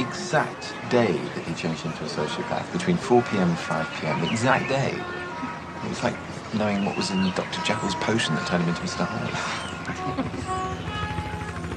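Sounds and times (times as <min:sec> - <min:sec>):
helicopter engine whine: 0:00.0 - 0:11.7
speech: 0:00.3 - 0:10.9
laughter: 0:07.8 - 0:10.7
helicopter circling overhead with thumping rotor blades: 0:08.5 - 0:11.7.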